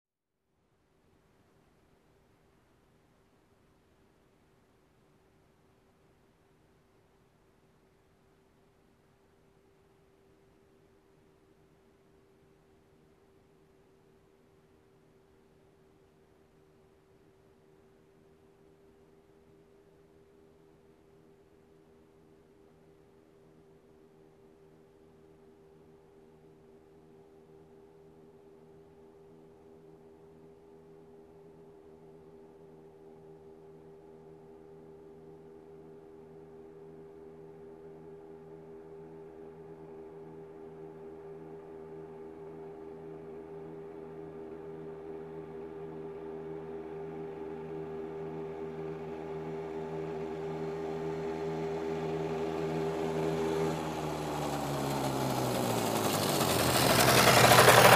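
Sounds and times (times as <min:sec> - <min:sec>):
motorcycle approaching and turning off: 0:39.9 - 0:57.9.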